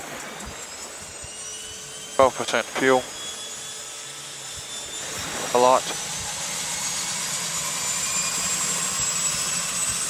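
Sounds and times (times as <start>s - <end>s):
turbine aircraft engine spinning up during start: 0.0s - 10.0s
speech: 2.2s - 3.2s, 5.5s - 6.1s.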